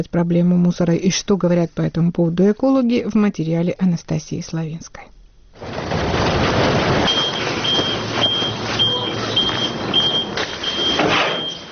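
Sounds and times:
speech: 0.0s - 5.9s
clanking: 5.6s - 11.7s
heavy garbage truck rumbling arriving at a landfill near Tbilisi Georgia: 5.6s - 11.7s
garbage truck reversing beeper: 7.0s - 11.7s.

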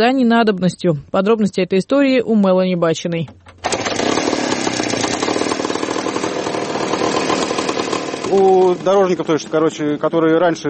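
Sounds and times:
speech: 0.0s - 3.6s, 8.3s - 10.6s
motorcycle engine with chain drive powering homemade narrow-gauge railway trolley: 3.6s - 10.6s.

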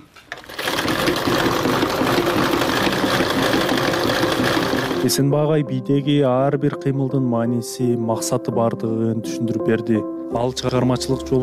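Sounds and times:
sewing machine stitching a traditional Kyrgyz belt: 0.3s - 5.1s
speech: 5.0s - 11.4s.

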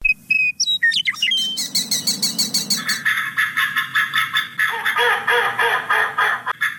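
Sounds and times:
migratory birds chirping at a wetland on the edge of Kabul in spring: 0.0s - 6.7s
duck-like quacking: 2.7s - 6.7s.

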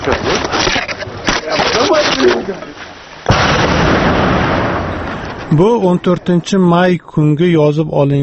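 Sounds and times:
speech: 0.0s - 0.5s, 5.5s - 8.2s
heavy burst of broadband noise: 0.0s - 7.0s
gunshots during a shooting: 3.3s - 6.0s.

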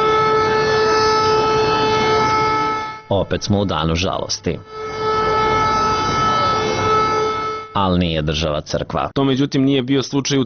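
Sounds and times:
civil defense all-clear siren across Serbia: 0.0s - 7.9s
speech: 3.1s - 5.0s, 7.7s - 10.4s.

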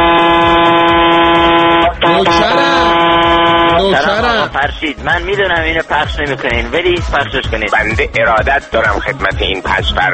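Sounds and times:
truck air horn blasts: 0.0s - 4.1s
speech: 4.5s - 10.1s.

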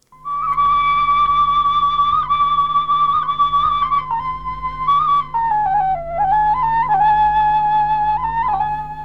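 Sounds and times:
low hum: 0.0s - 9.0s
shpelai flute melody: 0.2s - 9.0s.

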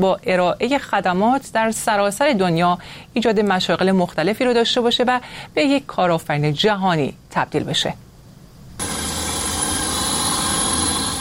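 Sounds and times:
speech: 0.0s - 8.0s
delivery drone whirring buzz with high-pitched whine in Balbriggan: 8.8s - 11.1s.

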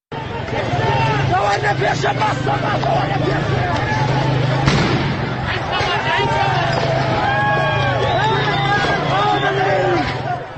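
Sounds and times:
crowd shouting outdoors during street clashes: 0.1s - 10.5s
gunshot during street clashes: 4.6s - 5.4s.

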